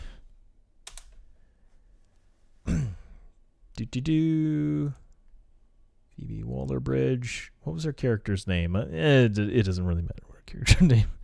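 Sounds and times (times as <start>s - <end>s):
typing on a computer keyboard: 0.8s - 1.2s
speech: 3.8s - 5.0s, 6.2s - 11.2s.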